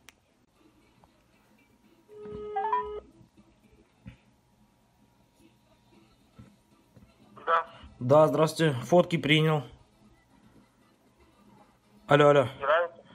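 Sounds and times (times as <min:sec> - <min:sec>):
telephone ringing tone of an outgoing call: 0:02.1 - 0:03.0
speech: 0:07.5 - 0:09.8, 0:12.1 - 0:12.7.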